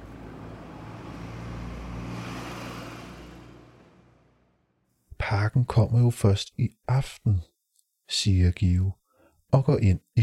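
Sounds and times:
vehicle driving slowly along the road in front of a house: 0.0 - 4.8
speech: 5.3 - 7.5, 8.1 - 10.2.

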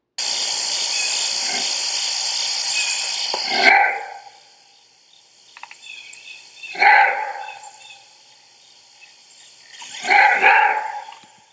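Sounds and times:
high-pitched buzz of insects: 0.2 - 11.5
maned wolf roar bark: 6.7 - 7.5, 10.0 - 11.1.

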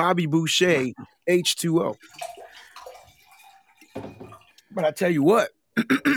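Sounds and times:
speech: 0.0 - 2.4, 4.0 - 6.1
drink being poured into a glass: 1.8 - 4.8.

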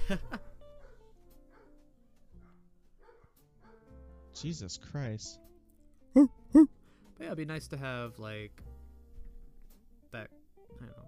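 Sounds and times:
speech: 0.1 - 0.4, 4.4 - 5.5, 6.1 - 8.7, 10.1 - 11.0
dogs barking: 0.1 - 4.0.

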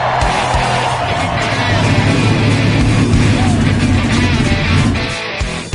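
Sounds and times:
several race car engines starting and revving: 0.2 - 5.7.

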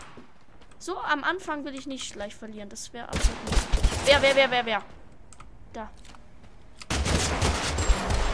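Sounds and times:
speech: 0.8 - 5.0, 5.8 - 6.2
rapid gunfire in a battle-royale video game: 3.1 - 4.6, 6.9 - 8.3.

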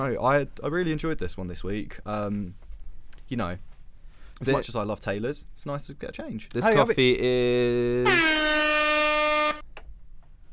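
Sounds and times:
speech: 0.0 - 2.6, 3.3 - 3.7, 4.4 - 8.8
loud sustained air horn blaring: 8.0 - 9.6.

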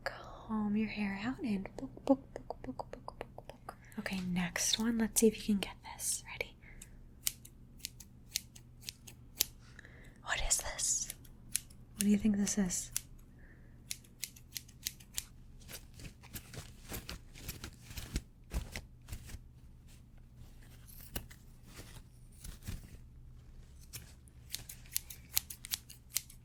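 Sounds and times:
steady low hum: 0.0 - 26.4
speech: 0.5 - 3.0, 4.0 - 6.5, 12.0 - 13.0
scissors snipping: 6.8 - 9.6, 11.0 - 12.2, 13.9 - 19.4, 20.7 - 23.0, 23.7 - 26.4.

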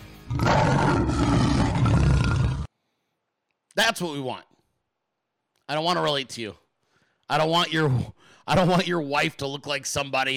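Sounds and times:
lion roaring: 0.3 - 2.7
speech: 3.9 - 4.5, 5.7 - 6.6, 7.3 - 10.3.

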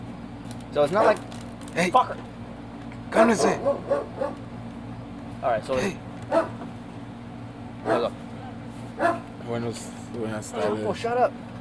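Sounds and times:
steady low hum: 0.0 - 11.5
speech: 0.7 - 2.3, 3.1 - 4.4, 5.4 - 6.6, 7.8 - 8.2, 9.0 - 11.5
dog barking: 0.9 - 1.2, 3.2 - 4.4, 6.3 - 6.6, 7.8 - 9.3, 10.5 - 10.9.

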